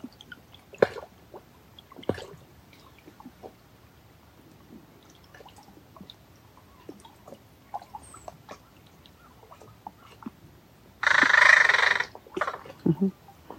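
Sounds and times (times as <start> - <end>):
crow calling softly: 11.0 - 12.6.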